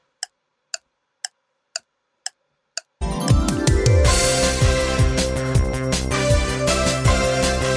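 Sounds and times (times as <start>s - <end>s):
clock ticking: 0.0s - 3.9s
loud dense music with a heavy beat: 3.3s - 7.7s.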